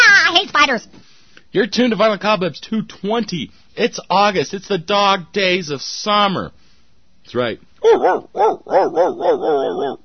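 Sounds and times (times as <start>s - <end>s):
speech: 0.4s - 6.6s, 7.3s - 10.0s
dog barking with high yapping barks: 7.8s - 10.0s.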